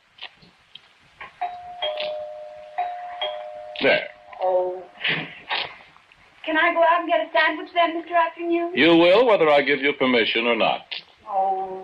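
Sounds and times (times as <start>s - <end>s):
doorbell chimes: 1.4s - 5.0s
speech: 3.8s - 5.2s, 6.5s - 11.8s.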